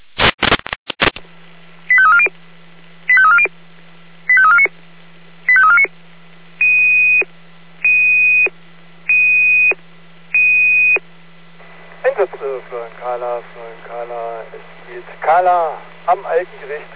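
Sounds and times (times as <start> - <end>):
steady hum: 0.0 - 16.9
electronic radio alarm alert tones for smoke: 1.9 - 2.3, 3.1 - 3.6, 4.3 - 4.7, 5.5 - 5.9, 6.6 - 9.8, 10.4 - 11.1
speech: 13.0 - 16.9.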